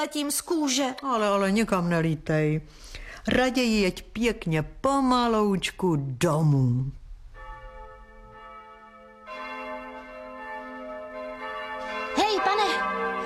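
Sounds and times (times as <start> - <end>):
speech: 0.0 - 7.0
church bells ringing in a festive peal: 7.4 - 13.2.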